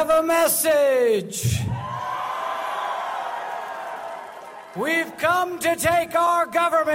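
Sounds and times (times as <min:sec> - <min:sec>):
speech: 0:00.1 - 0:01.7, 0:04.8 - 0:06.9
large crowd cheering and whooping at political rally: 0:01.6 - 0:05.2.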